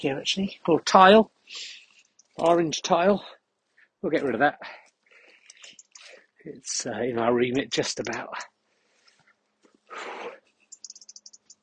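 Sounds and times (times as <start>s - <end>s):
speech: 0.0s - 1.8s, 2.4s - 3.4s, 4.0s - 4.8s, 6.4s - 8.5s
small bird chirruping in a tree outdoors: 5.2s - 6.1s, 9.9s - 11.6s.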